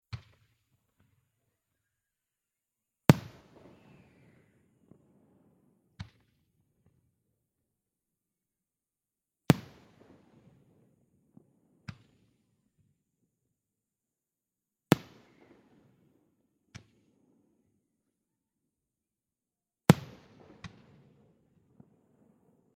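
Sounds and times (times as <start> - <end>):
slow fireworks: 3.1 - 7.0, 9.5 - 12.4, 14.9 - 17.6, 19.9 - 22.7.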